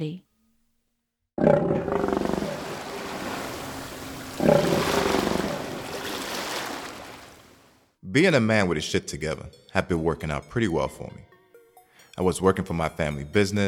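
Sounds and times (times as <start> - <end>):
speech: 0.0 - 0.3, 8.1 - 11.3, 12.2 - 13.6
lion roaring: 1.4 - 3.4, 4.2 - 6.2.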